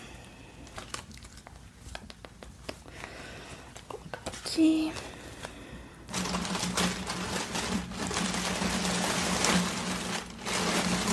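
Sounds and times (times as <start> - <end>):
rustling and crinkling of an item being folded into a bag: 0.0 - 11.1
light taps and crackles: 0.6 - 3.1
speech: 4.6 - 5.1.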